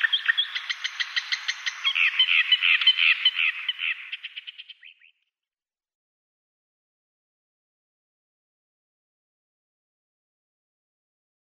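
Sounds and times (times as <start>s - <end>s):
Thick-billed warbler song: 0.0s - 5.3s.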